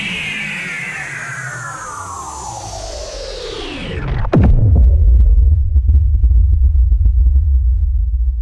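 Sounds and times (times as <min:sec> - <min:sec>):
synthesized sci fi power down descent: 0:03.9 - 0:08.4.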